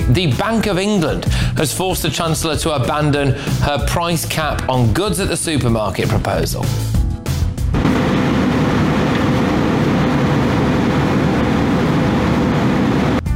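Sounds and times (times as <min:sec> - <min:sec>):
speech: 0:00.1 - 0:06.9
fighter jet engine roar flying past another aircraft: 0:07.8 - 0:13.3.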